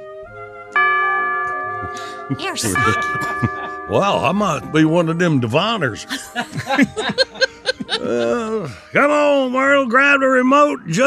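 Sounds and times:
two o'clock clock chime signal: 0.8 - 8.0
laughter: 1.8 - 9.9
speech: 1.9 - 11.0.

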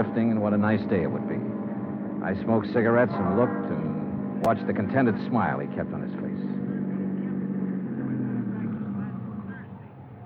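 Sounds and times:
speech: 0.0 - 1.6, 2.2 - 6.6
car engine humming as it drives slowly up a mansion driveway: 0.0 - 10.2.

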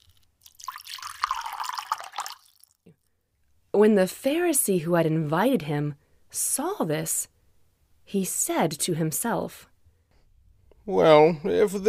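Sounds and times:
perfume pouring from a broken clay jar onto feet and dripping: 0.0 - 3.0
speech: 3.8 - 7.3, 8.1 - 9.7, 10.9 - 11.8.

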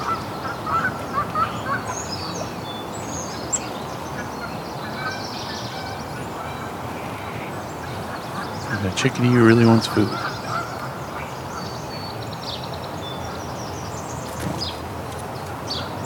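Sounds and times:
warblers and starlings chattering and whistling: 0.0 - 16.0
goose honks: 4.9 - 10.8
speech: 8.8 - 10.3.

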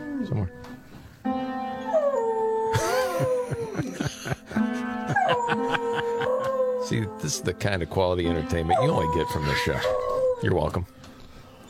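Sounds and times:
beagle howling along to a piano: 0.0 - 0.8, 1.8 - 3.8, 5.1 - 7.4, 8.5 - 10.7
speech: 0.2 - 0.8, 6.9 - 11.0
laughter: 2.7 - 6.8.

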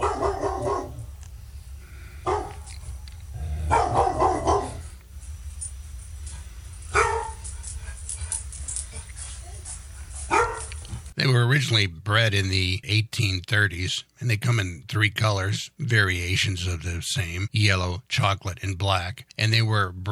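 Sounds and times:
Labrador Retriever barking: 0.0 - 1.2, 2.2 - 3.0, 3.6 - 5.0, 6.4 - 8.4, 9.0 - 10.8
low steady hum: 0.0 - 20.1
speech: 11.5 - 20.1.

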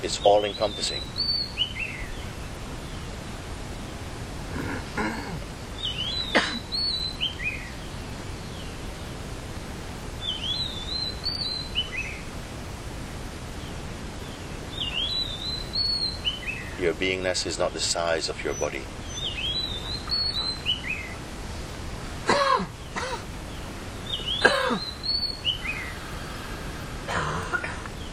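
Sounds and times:
speech: 0.0 - 1.6, 17.0 - 19.1
birds chirping and whistling outdoors: 0.0 - 28.1
steady hiss of ambient noise: 0.0 - 28.1.

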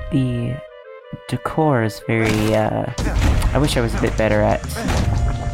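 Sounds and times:
speech: 0.1 - 0.6, 1.3 - 5.0
crates, a market stall and walls being smashed with a hammer: 2.2 - 5.5.

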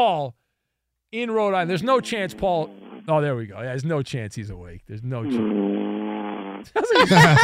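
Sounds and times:
speech: 0.0 - 0.4, 1.1 - 5.9, 6.6 - 7.4
buzzy fart-like drone through a phone line: 1.6 - 3.4, 5.2 - 6.9
laughter: 6.7 - 7.4.

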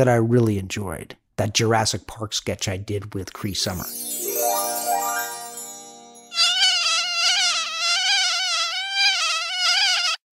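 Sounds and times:
speech: 0.0 - 4.2
mosquito buzzing: 6.3 - 10.3.

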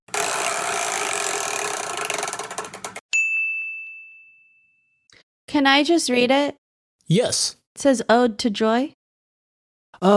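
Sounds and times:
big chore wheel spinning and clicking: 0.1 - 3.0
bright ding: 3.1 - 5.0
speech: 5.5 - 9.0, 10.0 - 10.1.

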